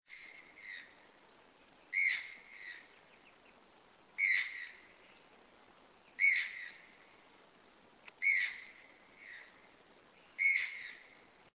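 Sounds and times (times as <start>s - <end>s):
Ramphastos vitellinus channel-billed toucan calling: 0.1s - 1.0s, 1.9s - 3.6s, 4.2s - 5.3s, 6.0s - 7.1s, 8.1s - 11.2s.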